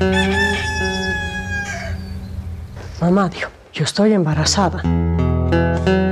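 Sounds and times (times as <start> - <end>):
rooster crowing at dawn on a cattle farm: 0.0 - 2.8
speech: 3.0 - 6.0.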